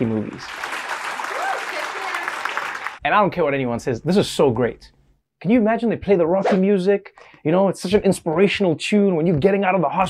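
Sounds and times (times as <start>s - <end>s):
speech: 0.0s - 0.7s, 3.0s - 10.0s
staff applauding a discharged patient: 0.0s - 3.0s.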